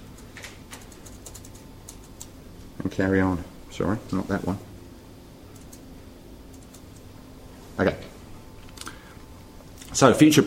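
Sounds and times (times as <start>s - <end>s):
low steady hum: 0.0s - 10.4s
computer clicks clicking back to a presentation: 0.2s - 2.3s, 5.5s - 5.8s, 6.5s - 7.1s, 8.6s - 9.0s
speech: 2.8s - 4.7s, 7.8s - 8.0s, 10.0s - 10.4s.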